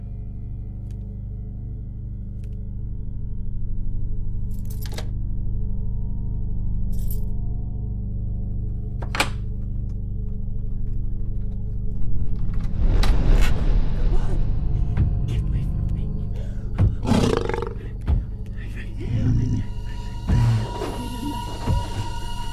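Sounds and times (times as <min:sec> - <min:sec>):
steady low rumble: 0:00.0 - 0:22.5
mountain lion roaring, growling and snarling: 0:17.0 - 0:17.9.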